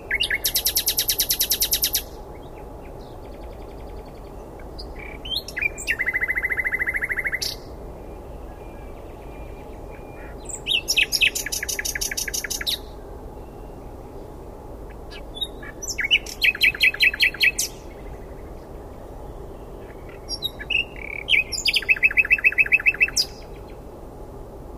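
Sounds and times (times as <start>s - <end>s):
common nightingale Luscinia megarhynchos singing: 3.5s - 12.9s, 15.1s - 18.4s, 19.4s - 23.6s.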